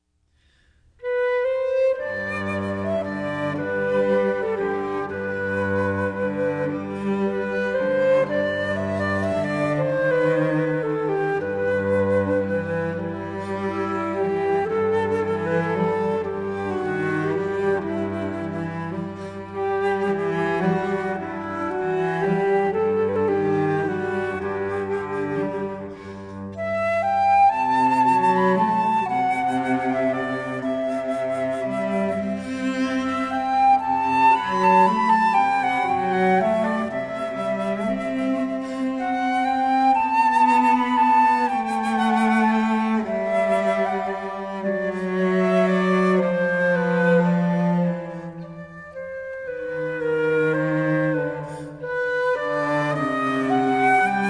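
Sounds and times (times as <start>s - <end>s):
cello: 0.0s - 54.2s
flute: 0.0s - 54.2s.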